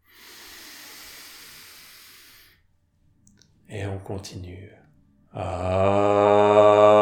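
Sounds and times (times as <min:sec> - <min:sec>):
deep breath in through the nose during a vowel-chanting breathing exercise: 0:00.0 - 0:02.7
speech: 0:03.7 - 0:06.9.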